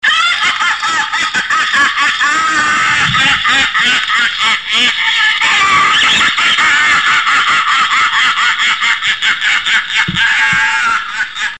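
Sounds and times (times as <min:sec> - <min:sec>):
laughing bag laughter: 0:00.0 - 0:11.5.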